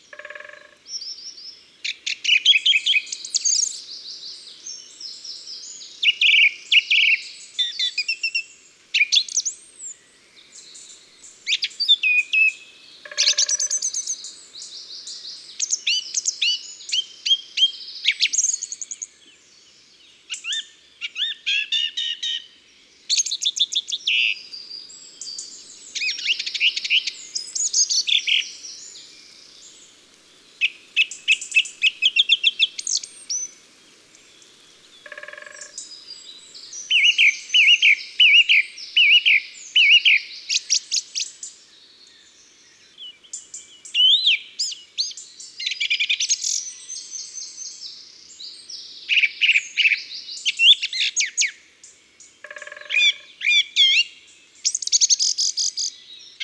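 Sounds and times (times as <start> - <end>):
birds singing in the countryside: 0.0 - 56.4
great spotted woodpecker drumming: 0.1 - 0.8, 35.0 - 35.8.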